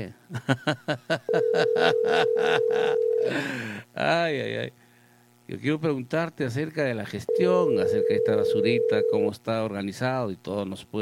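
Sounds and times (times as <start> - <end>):
speech: 0.0 - 4.8, 5.5 - 10.9
telephone call tone: 1.3 - 3.4, 7.3 - 9.3.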